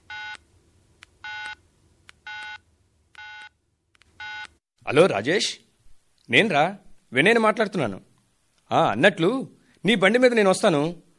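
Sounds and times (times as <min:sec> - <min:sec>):
telephone keypad dialing tones: 0:00.1 - 0:00.4, 0:01.2 - 0:01.6, 0:02.2 - 0:02.6, 0:03.2 - 0:03.5, 0:04.2 - 0:04.5
speech: 0:04.9 - 0:05.7, 0:06.3 - 0:08.1, 0:08.7 - 0:11.0.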